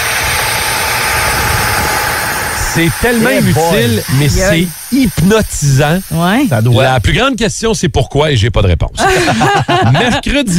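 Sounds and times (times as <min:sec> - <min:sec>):
sander grinding a mobile phone apart: 0:00.0 - 0:07.2
speech: 0:02.8 - 0:10.5
laughter: 0:02.9 - 0:04.7, 0:09.0 - 0:10.5.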